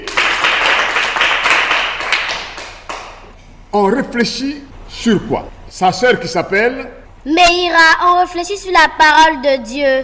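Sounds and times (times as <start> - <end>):
audience applauding in a group Bible lesson: 0.0 - 3.2
speech: 3.8 - 10.0.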